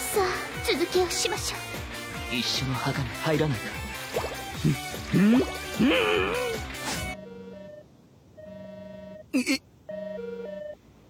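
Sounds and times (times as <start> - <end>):
speech: 0.2 - 6.7, 9.4 - 9.7
telephone with melodic electronic ringtone: 7.2 - 7.8, 8.4 - 9.3, 9.9 - 10.8.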